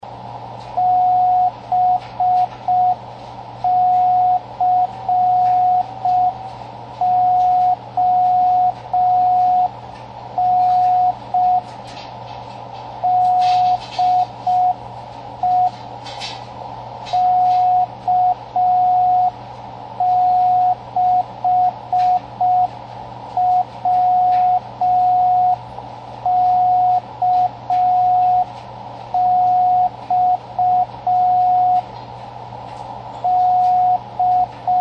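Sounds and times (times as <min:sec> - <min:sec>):
slow CW morse code beacon: 0:00.8 - 0:03.0, 0:03.6 - 0:09.8, 0:10.4 - 0:11.7, 0:13.0 - 0:14.8, 0:15.4 - 0:15.8, 0:17.1 - 0:19.4, 0:20.0 - 0:22.8, 0:23.4 - 0:25.6, 0:26.2 - 0:28.5, 0:29.1 - 0:31.9, 0:33.2 - 0:34.8.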